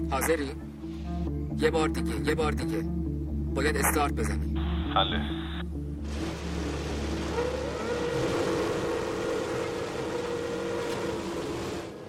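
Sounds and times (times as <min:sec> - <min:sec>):
speech: 0:00.1 - 0:00.7, 0:01.6 - 0:05.4
Formula One race car engines roaring and revving onto the track: 0:06.1 - 0:12.0.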